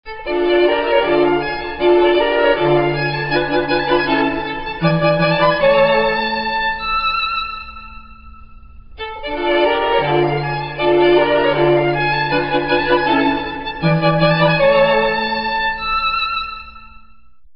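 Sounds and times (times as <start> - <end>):
violin in a room: 0.1 - 17.1.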